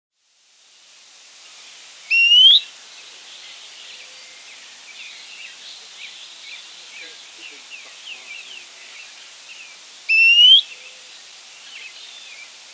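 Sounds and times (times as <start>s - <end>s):
Fuscous Flycatcher Cnemotriccus fuscatus loud upslurred whistled notes: 2.1s - 2.6s, 10.1s - 10.6s.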